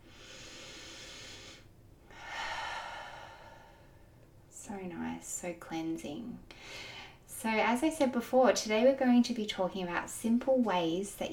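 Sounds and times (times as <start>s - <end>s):
deep breathing in and out: 0.0s - 4.3s, 6.5s - 7.2s
speech: 4.7s - 11.3s.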